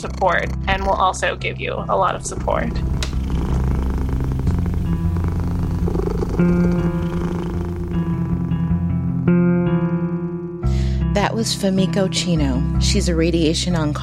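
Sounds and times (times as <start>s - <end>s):
speech: 0.0s - 3.5s, 6.4s - 7.0s, 11.4s - 14.0s
cat purring: 0.0s - 10.7s.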